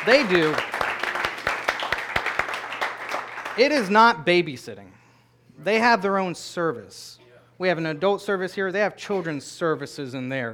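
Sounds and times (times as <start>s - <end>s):
speech: 0.0s - 0.7s, 3.6s - 5.0s, 5.6s - 10.5s
crowd noise: 0.0s - 1.3s
church congregation clapping hands in a steady rhythm: 0.0s - 4.2s.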